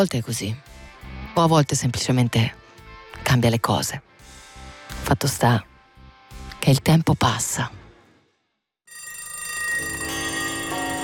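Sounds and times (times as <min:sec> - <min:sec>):
speech: 0:00.0 - 0:00.7, 0:01.3 - 0:02.6, 0:03.2 - 0:04.1, 0:05.1 - 0:05.7, 0:06.6 - 0:07.8
alarm clock metallic bell ringing: 0:08.9 - 0:11.0.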